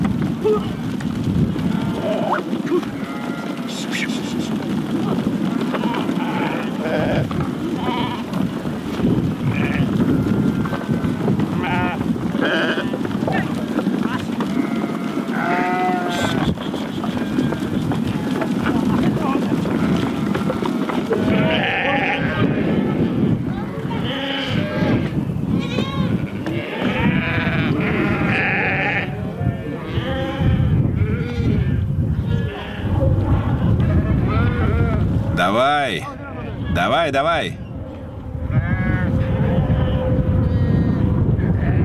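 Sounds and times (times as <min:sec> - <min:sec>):
steady rumble of wind: 0:00.0 - 0:41.8
large flock of sheep bleating: 0:01.6 - 0:04.6, 0:05.6 - 0:08.4, 0:09.4 - 0:18.3, 0:19.1 - 0:22.9, 0:23.9 - 0:32.9, 0:34.1 - 0:35.1, 0:38.5 - 0:41.8
indistinct voices: 0:01.6 - 0:37.7
speech: 0:37.1 - 0:37.6.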